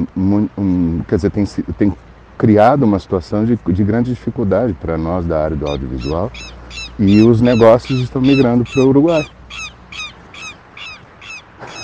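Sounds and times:
low constant outdoor rumble: 0.0 - 11.8
speech: 0.1 - 9.6
seagull calling: 5.5 - 11.8.

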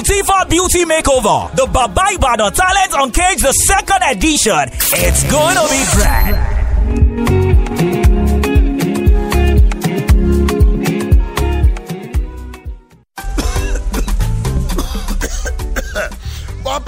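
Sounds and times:
speech: 0.0 - 7.3
busy music: 0.0 - 16.8
person coughing in harsh rapid bursts: 13.2 - 16.5.

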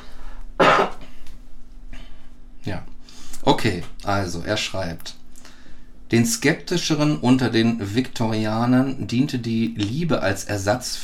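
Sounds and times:
quiet room hum: 0.0 - 11.0
person coughing before reading aloud: 0.6 - 1.1
throat clearing: 0.6 - 1.1
speech: 2.6 - 2.9, 3.5 - 5.2, 6.1 - 11.0.

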